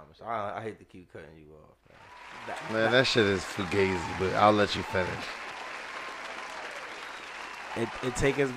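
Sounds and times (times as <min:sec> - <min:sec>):
speech: 0:00.2 - 0:05.4, 0:07.8 - 0:08.5
dense clapping from a group: 0:01.9 - 0:08.5.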